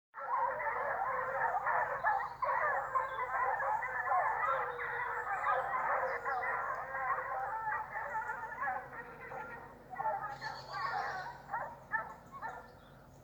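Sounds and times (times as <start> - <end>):
hounds in cry during a foxhunt: 0.2 - 13.2.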